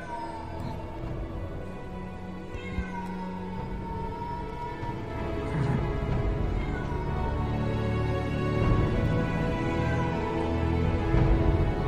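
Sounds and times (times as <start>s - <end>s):
low droning background: 0.0s - 11.8s
black cat meowing at night: 2.4s - 7.8s.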